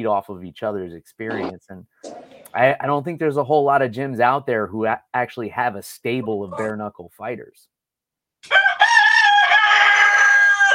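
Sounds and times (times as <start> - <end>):
speech: 0.0 - 7.7
rooster crowing: 8.5 - 10.7.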